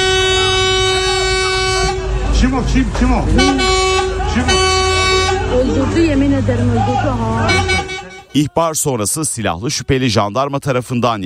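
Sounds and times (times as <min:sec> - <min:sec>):
car horns honking: 0:00.0 - 0:08.6
agitated voices shouting: 0:02.0 - 0:08.5
speech: 0:02.5 - 0:03.8, 0:04.4 - 0:04.8, 0:05.5 - 0:07.8, 0:08.4 - 0:11.2.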